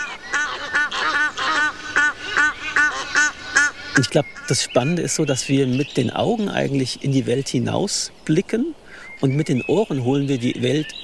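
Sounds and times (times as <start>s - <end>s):
Egyptian geese honking while mating: 0.0s - 4.6s
speech: 4.0s - 11.0s.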